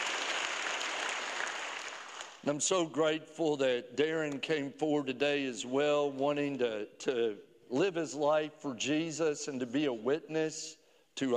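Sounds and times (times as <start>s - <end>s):
room full of people applauding: 0.0s - 2.4s
speech: 2.4s - 11.3s.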